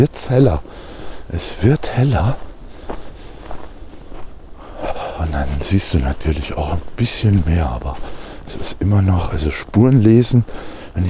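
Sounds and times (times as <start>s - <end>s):
speech: 0.0s - 2.5s, 5.2s - 11.0s
person running through deep snow in a forest: 2.3s - 11.0s.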